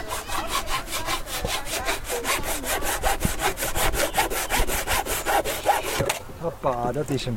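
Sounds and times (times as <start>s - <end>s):
saw cutting through pallet wood: 0.0s - 6.2s
speech: 6.6s - 7.3s.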